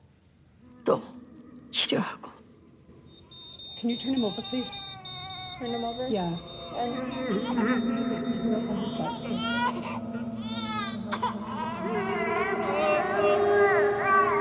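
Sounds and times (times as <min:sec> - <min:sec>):
faint activity: 0:00.0 - 0:14.3
steady hum: 0:00.5 - 0:14.3
speech: 0:00.8 - 0:01.1, 0:01.9 - 0:02.3, 0:03.8 - 0:04.9, 0:05.6 - 0:10.2
newborn baby crying: 0:04.0 - 0:14.3.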